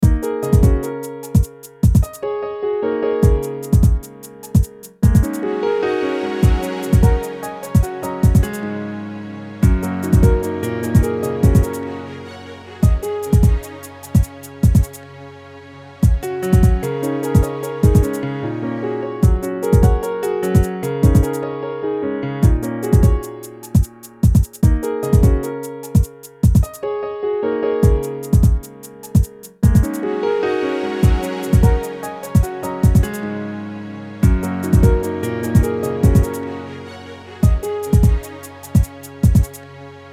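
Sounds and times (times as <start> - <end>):
beat loop: 0.0 - 2.2, 3.2 - 5.5, 6.4 - 8.6, 9.6 - 11.8, 12.8 - 15.0, 16.0 - 18.3, 19.2 - 21.4, 22.4 - 26.8, 27.8 - 30.0, 31.0 - 33.2, 34.2 - 36.4, 37.4 - 39.6
strings loop: 0.0 - 26.9, 27.7 - 40.1
piano loop: 0.0 - 40.1.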